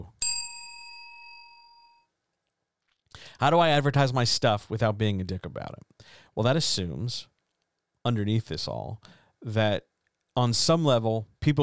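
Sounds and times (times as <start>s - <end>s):
single bell struck and ringing: 0.2s - 2.0s
speech: 3.4s - 7.3s, 8.0s - 11.6s.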